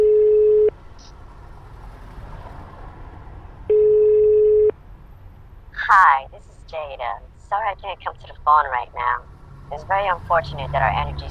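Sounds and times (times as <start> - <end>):
telephone ringback tone while placing a call: 0.0 - 0.7, 3.7 - 4.7
speech: 7.8 - 11.2.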